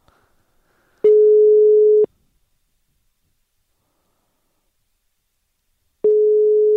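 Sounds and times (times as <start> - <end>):
telephone ringback tone while calling: 1.1 - 2.1, 6.1 - 6.7.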